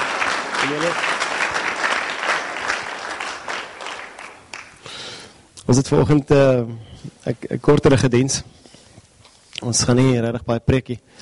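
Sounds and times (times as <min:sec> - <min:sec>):
congregation clapping hands: 0:00.0 - 0:05.2
speech: 0:00.7 - 0:01.1, 0:05.7 - 0:08.6, 0:09.6 - 0:11.2.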